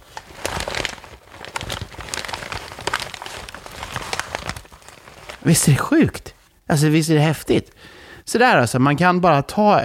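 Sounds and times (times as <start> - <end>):
paper rustling and crinkling imitating a crackling fireplace: 0.0 - 6.6
speech: 5.4 - 9.8.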